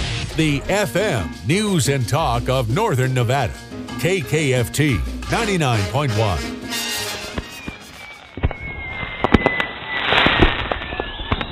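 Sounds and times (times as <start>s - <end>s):
speech: 0.4s - 6.7s
firecrackers popping and banging: 6.7s - 11.4s.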